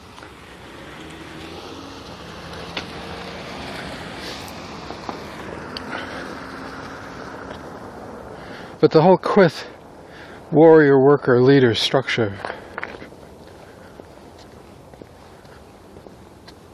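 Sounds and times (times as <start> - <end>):
car passing along a road: 0.0 - 8.8
wind-like outdoor noise: 0.0 - 16.7
speech: 8.8 - 9.7, 10.5 - 12.5.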